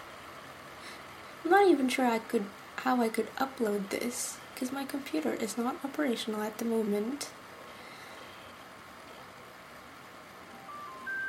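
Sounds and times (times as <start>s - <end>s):
faint hiss: 0.0s - 11.2s
speech: 1.4s - 7.4s
phone ringing with short electronic tones: 10.5s - 11.2s.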